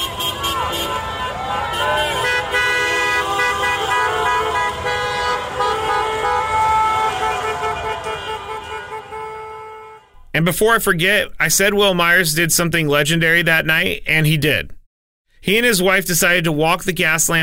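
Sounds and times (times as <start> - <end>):
fans shouting and yelling in the street: 0.0 - 2.9, 6.4 - 9.0
car horns honking at a street celebration: 0.0 - 10.3
speech: 10.4 - 14.8, 15.4 - 17.4.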